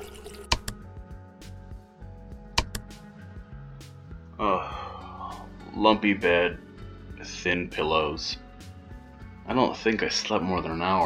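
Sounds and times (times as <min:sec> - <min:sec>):
hot water running from a tap: 0:00.0 - 0:00.7
speech: 0:05.8 - 0:06.6, 0:07.4 - 0:08.4, 0:09.5 - 0:11.0.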